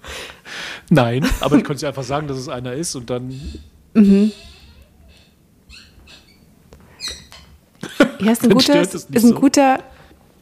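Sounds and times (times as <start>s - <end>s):
speech: 0.9s - 4.5s, 8.2s - 10.3s
new office chair squeaking: 3.3s - 3.7s, 4.3s - 7.6s.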